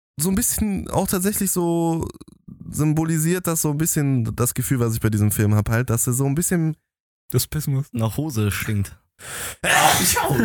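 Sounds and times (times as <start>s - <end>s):
speech: 0.2s - 10.4s
person sneezing: 9.7s - 10.4s.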